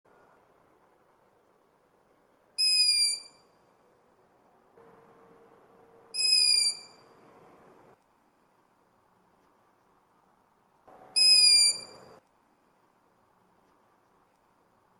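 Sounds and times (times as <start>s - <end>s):
young long-eared owl whistling calls: 2.6s - 3.4s, 6.2s - 7.0s, 11.2s - 12.0s.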